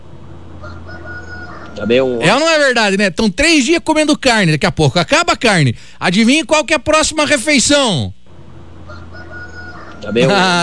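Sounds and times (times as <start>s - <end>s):
steady low background hum: 0.0s - 10.6s
rooster crowing: 0.2s - 2.2s, 8.4s - 10.4s
speech: 1.8s - 8.2s, 10.0s - 10.6s.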